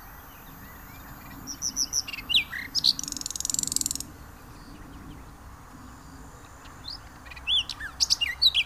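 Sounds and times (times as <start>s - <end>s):
Common nightingale song in Venezia: 0.0s - 8.6s.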